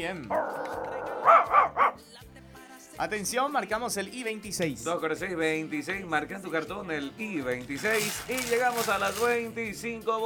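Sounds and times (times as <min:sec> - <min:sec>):
speech: 0:00.0 - 0:02.2, 0:03.0 - 0:10.2
small dog yapping: 0:00.3 - 0:02.0.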